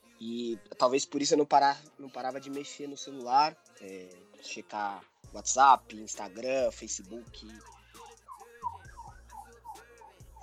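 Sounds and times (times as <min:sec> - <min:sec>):
speech: 0:00.2 - 0:07.8
ambulance siren yelping: 0:08.3 - 0:10.4.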